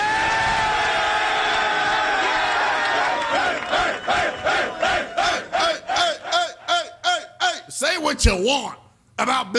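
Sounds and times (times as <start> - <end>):
football team cheering for its head coach in the locker room: 0.0 - 7.6
football team rhythmic chanted shouts: 0.9 - 7.7
speech: 8.2 - 9.5.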